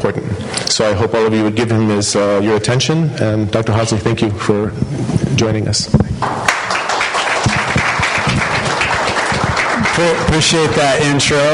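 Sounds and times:
speech: 0:00.1 - 0:06.3, 0:10.0 - 0:11.5
audience at a talk on addiction applauding: 0:06.2 - 0:11.5.

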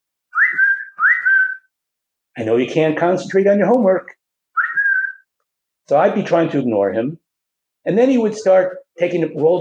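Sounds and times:
person whistling short phrases at the entrance of a room: 0:00.3 - 0:01.8, 0:04.6 - 0:05.3
speech: 0:02.4 - 0:04.2, 0:05.9 - 0:07.2, 0:07.8 - 0:09.5.

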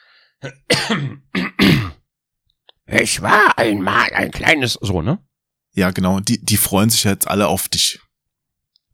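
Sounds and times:
speech: 0:00.4 - 0:01.1, 0:03.0 - 0:08.1
person clearing throat: 0:00.4 - 0:02.1.

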